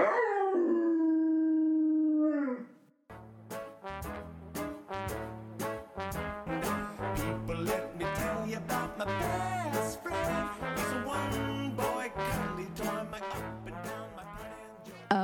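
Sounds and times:
dog howling: 0:00.0 - 0:02.8
upbeat music with a steady beat: 0:03.5 - 0:15.2.

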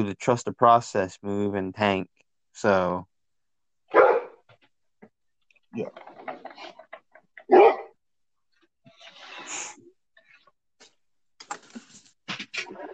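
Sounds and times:
speech: 0:00.0 - 0:03.1, 0:05.7 - 0:06.8
feisty dog barking: 0:03.9 - 0:04.4, 0:07.5 - 0:07.9.

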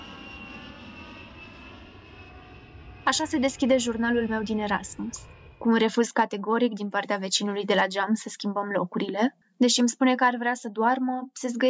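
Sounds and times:
airplane engine roar with high whine during takeoff: 0:00.0 - 0:06.1
speech: 0:03.1 - 0:11.6.

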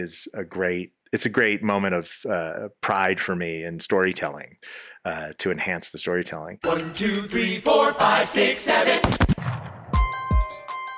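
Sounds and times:
speech: 0:00.0 - 0:09.7
loud booming gunshots in a duel: 0:09.0 - 0:10.1.

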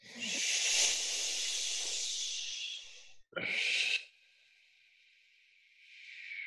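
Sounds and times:
breathy exhale out of the mouth during a breathwork exercise: 0:00.2 - 0:03.9.

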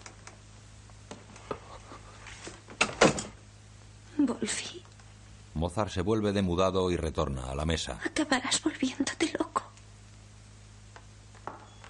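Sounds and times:
door closing: 0:02.8 - 0:03.4
speech: 0:04.2 - 0:04.9, 0:05.6 - 0:09.6.

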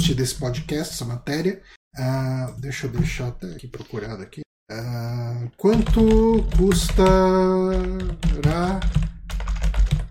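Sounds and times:
speech: 0:00.0 - 0:09.1
loud rapid typing on a computer keyboard: 0:05.7 - 0:10.0.

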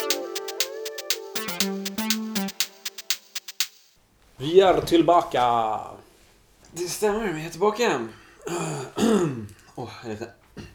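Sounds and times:
speech: 0:04.4 - 0:06.0, 0:06.7 - 0:10.4
person clearing throat: 0:08.5 - 0:09.5, 0:10.6 - 0:10.7.

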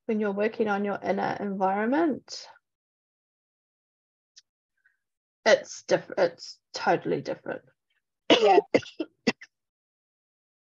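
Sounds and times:
speech: 0:00.1 - 0:02.6, 0:05.5 - 0:07.7, 0:08.3 - 0:09.1
person coughing: 0:08.3 - 0:09.4.

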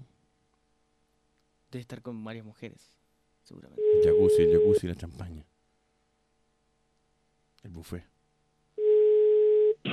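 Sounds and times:
speech: 0:01.7 - 0:05.5, 0:07.6 - 0:08.1
telephone line tone: 0:03.8 - 0:04.8, 0:08.8 - 0:09.8.

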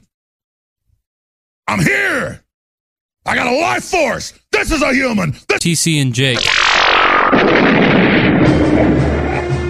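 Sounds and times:
speech: 0:01.7 - 0:02.4, 0:03.2 - 0:07.0
loud explosion with deep rolling rumble: 0:06.4 - 0:09.6.

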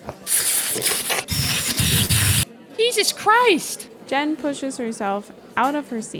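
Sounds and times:
man making airy sucking noises with his mouth mimicking a vacuum cleaner: 0:00.2 - 0:02.4
speech: 0:03.0 - 0:06.1.

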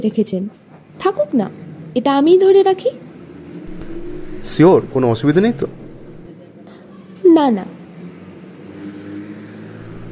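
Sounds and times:
speech: 0:00.0 - 0:03.0, 0:04.4 - 0:05.8, 0:07.4 - 0:07.8
bus engine and road rumble while travelling fast: 0:03.7 - 0:06.3, 0:07.8 - 0:10.1.

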